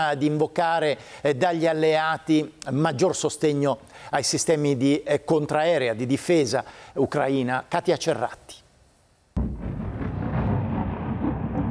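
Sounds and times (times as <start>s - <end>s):
speech: 0.0s - 8.6s
explosion booming over Kyiv during Russian attacks: 9.4s - 11.7s
heavy deep rumble: 9.4s - 11.7s.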